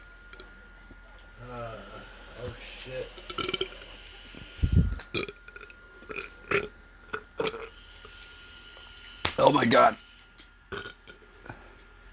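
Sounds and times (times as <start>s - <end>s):
speech: 2.5s - 3.5s, 9.5s - 10.0s
shorter gulping throaty bursts: 3.2s - 3.8s, 4.7s - 7.8s, 10.7s - 11.2s
deep rumbling belch: 3.3s - 3.8s, 5.1s - 7.7s, 10.7s - 11.2s.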